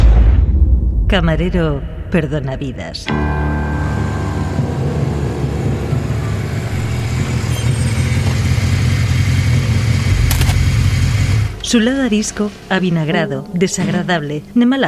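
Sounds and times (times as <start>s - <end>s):
speech: 1.1s - 3.7s, 11.7s - 14.8s
large-displacement motorcycle engine idling: 3.8s - 11.6s.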